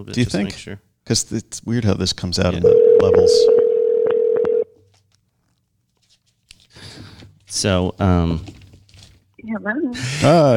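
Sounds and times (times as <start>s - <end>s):
speech: 0.0s - 3.6s, 7.5s - 8.6s, 9.5s - 10.5s
telephone dialing tone: 2.6s - 4.8s.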